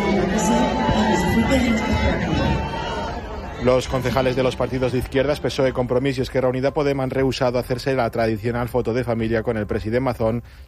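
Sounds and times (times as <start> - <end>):
dense crowd booing and shouting for resignation: 0.0 - 5.5
speech: 1.5 - 2.7, 3.6 - 10.6.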